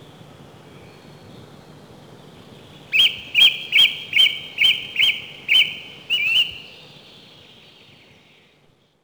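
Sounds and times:
song thrush whistled phrase: 2.9 - 6.7.

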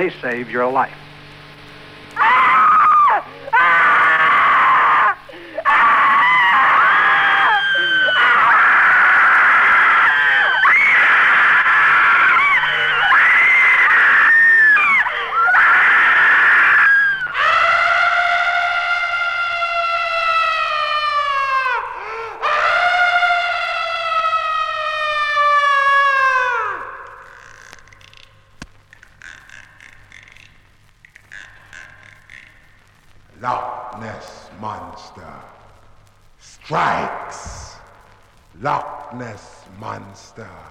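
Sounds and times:
speech: 0.0 - 1.1
several people screaming in terror: 2.2 - 27.8
long sustained high-pitched wail: 2.2 - 28.1.

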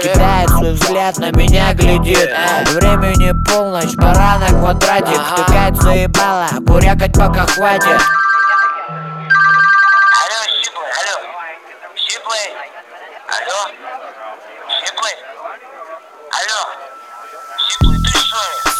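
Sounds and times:
speech: 0.0 - 8.3
mobile phone ringtone playing a pop song with a female singer: 0.0 - 10.8, 16.3 - 18.7
short electronic beep: 7.6 - 10.7, 16.6 - 18.7.

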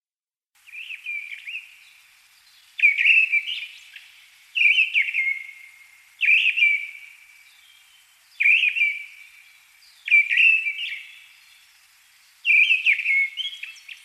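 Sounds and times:
Turdus viscivorus mistle thrush singing clear whistled phrases: 0.6 - 14.0.

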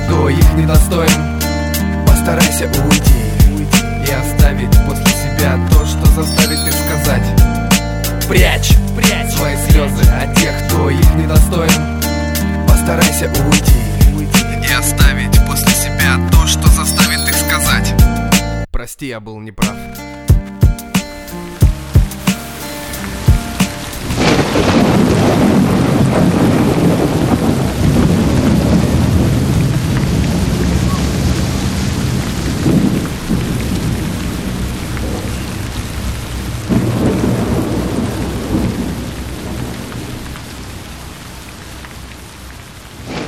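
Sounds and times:
heavy rain pouring in a thunderstorm: 0.0 - 18.2, 19.9 - 43.2
speech: 0.3 - 1.4, 2.3 - 3.3, 9.4 - 11.9, 12.9 - 15.1, 18.9 - 20.2
deep thunder rumbling and rolling in a heavy thunderstorm: 20.6 - 41.2, 42.6 - 43.2.

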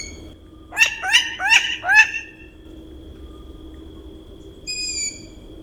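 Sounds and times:
long-eared owl chicks thin squeaky screeches at the nest: 0.7 - 2.5
long-eared owl harsh barking chatter notes: 0.7 - 2.5.

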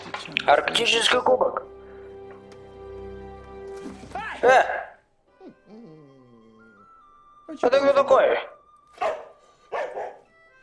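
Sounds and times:
speech: 0.3 - 1.8, 4.4 - 4.8, 7.5 - 9.2
dog barking: 9.0 - 10.3.

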